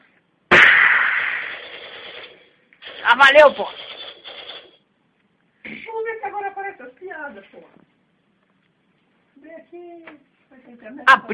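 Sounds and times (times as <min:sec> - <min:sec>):
gunshot sound effect: 0:00.5 - 0:04.0
speech: 0:03.0 - 0:03.8, 0:09.8 - 0:11.3.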